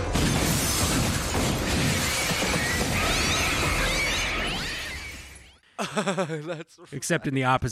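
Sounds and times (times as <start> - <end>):
50 caliber round hitting a bulletproof glass window: 0.1 - 3.7
bulletproof glass crunching and shattering: 0.1 - 5.3
laughter: 5.8 - 6.9
speech: 6.0 - 7.7.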